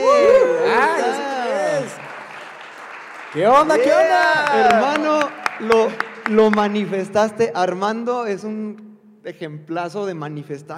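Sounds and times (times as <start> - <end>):
many voices whooping and cheering: 0.0 - 2.1, 3.6 - 5.2
studio audience applauding: 0.0 - 7.2
speech: 3.4 - 10.7.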